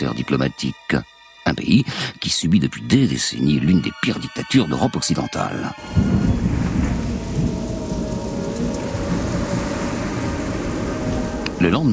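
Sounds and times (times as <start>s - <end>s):
speech: 0.0s - 6.7s, 11.6s - 11.9s
churning sea: 4.6s - 11.9s
deep rolling thunder: 5.8s - 11.9s
gusting wind: 5.8s - 11.9s.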